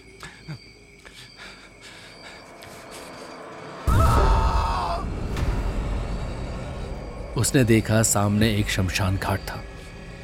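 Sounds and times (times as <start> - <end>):
faint insect-like chirps: 0.0 - 4.5, 5.4 - 10.2
man screaming: 3.9 - 5.1
rumbling noise: 3.9 - 10.2
speech: 7.4 - 9.7.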